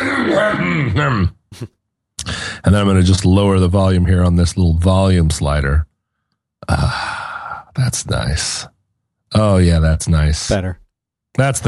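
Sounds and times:
person clearing throat: 0.0s - 1.8s
speech: 0.3s - 1.8s, 2.6s - 5.9s, 6.6s - 7.2s, 7.8s - 8.7s, 9.3s - 10.8s, 11.4s - 11.6s.

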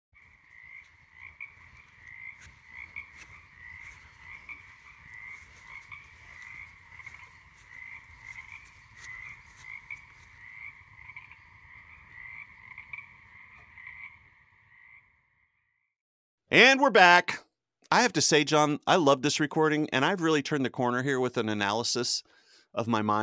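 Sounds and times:
dense chorus of frogs croaking and trilling at night: 0.2s - 15.9s
speech: 16.5s - 23.2s.

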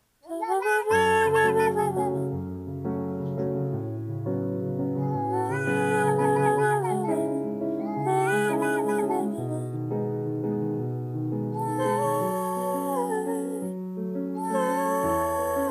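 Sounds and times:
person singing: 0.2s - 2.5s, 5.0s - 10.0s, 11.5s - 15.7s
steady musical backing: 0.4s - 15.7s
cat-like meows drawn out into melodic sung notes: 5.0s - 7.2s, 7.8s - 9.6s.

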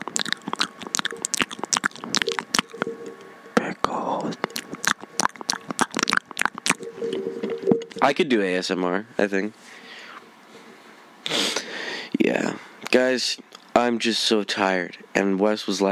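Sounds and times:
crunchy pickles being bitten and chewed: 0.0s - 6.9s
soft mouth sounds: 0.0s - 8.1s
speech: 8.0s - 9.8s, 12.9s - 15.9s.

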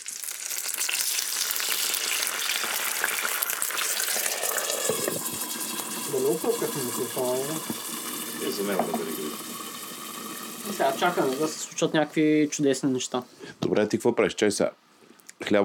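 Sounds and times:
water sizzling in a hot pan cooking food under a lid: 0.0s - 13.3s
speech: 6.3s - 7.8s, 8.4s - 9.6s, 10.7s - 14.8s, 15.4s - 15.6s.

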